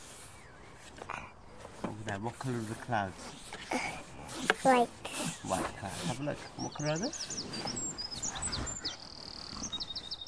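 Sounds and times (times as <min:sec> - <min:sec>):
speech: 0:02.2 - 0:07.8
bird singing bright high chirps and trills: 0:05.4 - 0:10.2.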